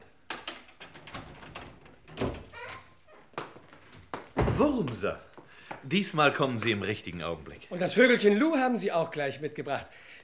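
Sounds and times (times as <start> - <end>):
scrape and rattle of a door being forced open: 0.4 - 4.6
heavy dull thumps and bangs against a wooden door being forced open: 4.2 - 4.8
speech: 4.6 - 10.2.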